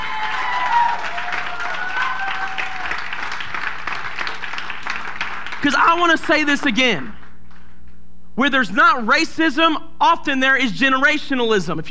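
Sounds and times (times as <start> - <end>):
faint cheers: 0.0 - 3.1
audience applauding: 0.0 - 6.8
speech: 5.6 - 7.2, 8.4 - 11.8.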